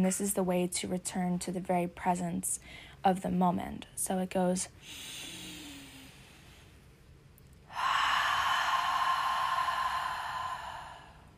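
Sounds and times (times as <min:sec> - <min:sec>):
speech: 0:00.0 - 0:05.4
deep breath in through the nose and out through the mouth during a guided breathing exercise: 0:04.8 - 0:06.8, 0:07.7 - 0:11.3.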